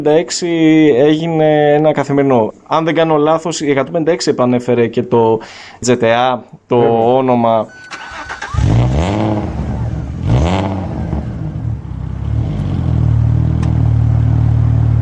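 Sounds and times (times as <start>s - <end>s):
speech: 0.0s - 8.0s
V6 car engine revving and idling: 7.9s - 15.0s.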